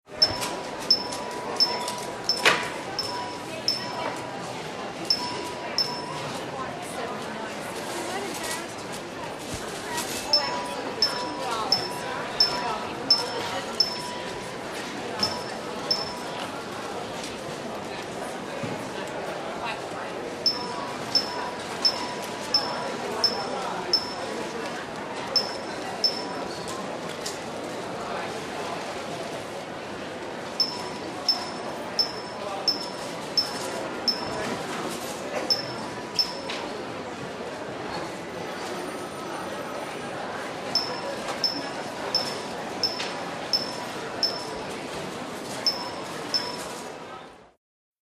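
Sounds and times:
department store crowd background noise: 0.0 - 47.6
department store paging bell: 0.2 - 4.2, 5.1 - 6.2, 10.3 - 14.3, 15.2 - 16.3, 20.5 - 24.3, 25.4 - 26.4, 30.6 - 34.6, 35.5 - 36.6, 40.8 - 44.6, 45.6 - 46.7.

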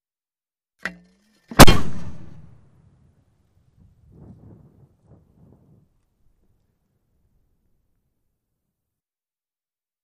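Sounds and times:
German 88cm mortar firing: 1.5 - 2.6.

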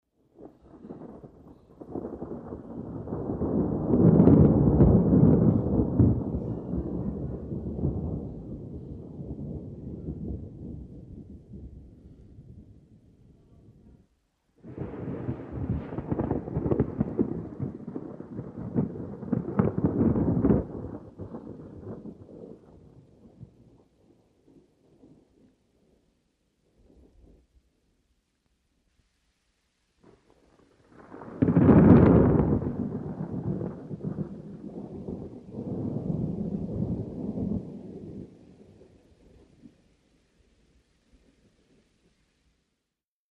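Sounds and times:
distant thunder long roll: 0.4 - 13.7, 14.6 - 25.4, 30.0 - 39.8.

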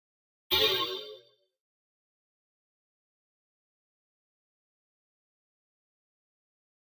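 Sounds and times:
electronic spring reverb: 0.5 - 1.3.

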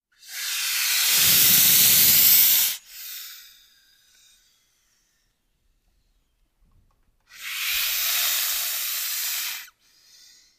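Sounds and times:
close albino boas hissing: 0.2 - 3.6, 7.3 - 10.5.

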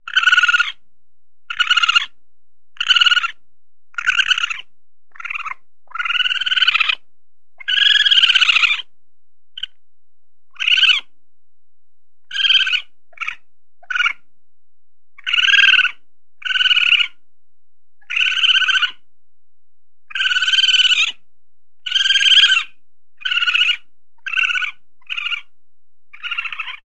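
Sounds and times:
raccoons chittering: 0.1 - 0.8, 1.5 - 2.1, 2.8 - 3.4, 4.0 - 7.0, 7.6 - 8.8, 10.6 - 11.1, 12.3 - 14.2, 15.2 - 17.2, 18.0 - 19.0, 20.1 - 21.2, 21.8 - 25.5, 26.1 - 26.8.

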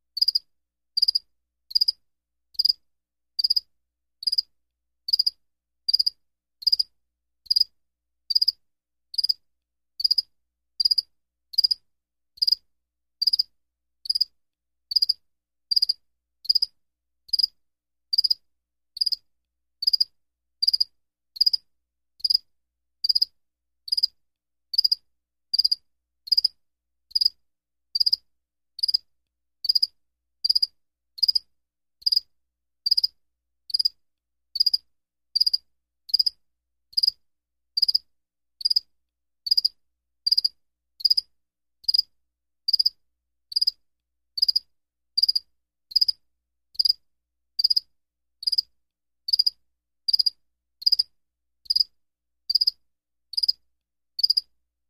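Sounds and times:
single cricket chirp: 0.2 - 2.0, 2.6 - 2.8, 3.4 - 4.5, 5.1 - 6.9, 7.5 - 7.7, 8.3 - 8.6, 9.2 - 9.4, 10.0 - 11.8, 12.4 - 12.6, 13.2 - 14.3, 14.9 - 16.7, 17.3 - 17.5, 18.1 - 18.4, 19.0 - 19.2, 19.8 - 21.6, 22.2 - 22.4, 23.0 - 23.3, 23.9 - 24.1, 24.8 - 26.6, 27.2 - 27.4, 28.0 - 28.2, 28.8 - 29.0, 29.6 - 32.2, 32.9 - 33.1, 33.7 - 34.0, 34.6 - 34.8, 35.4 - 36.4, 37.0 - 37.2, 37.8 - 38.0, 38.6 - 38.8, 39.5 - 41.3, 41.9 - 42.1, 42.7 - 43.8, 44.4 - 46.2, 46.8 - 47.0, 47.6 - 48.7, 49.3 - 49.5, 50.1 - 51.1, 51.7 - 51.9, 52.5 - 53.6, 54.2 - 54.5.

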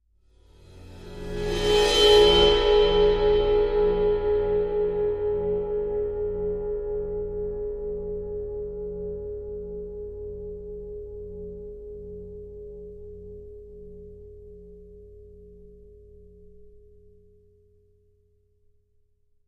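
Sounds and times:
bowed Sabian 18 cymbal: 0.5 - 10.6.

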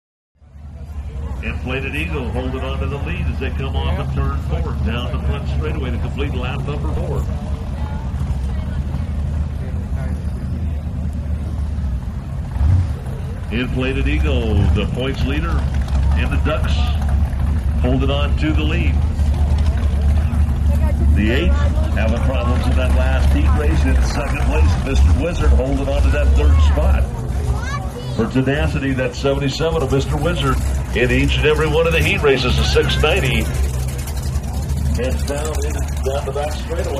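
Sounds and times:
boat race crowd ambience: 0.4 - 36.9
offshore power boat: 0.4 - 36.9.

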